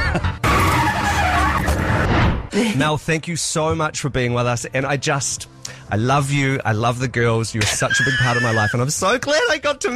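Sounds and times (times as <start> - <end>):
race car tyres screeching as the car skids: 0.4 - 2.0, 7.6 - 9.7
speech: 2.6 - 9.9.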